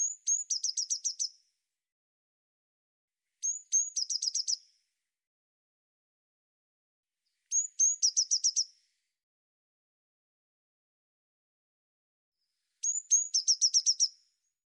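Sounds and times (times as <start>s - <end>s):
Eurasian blue tit thin high whistled notes: 0.0s - 1.4s, 3.4s - 4.8s, 7.3s - 8.8s, 12.8s - 14.4s.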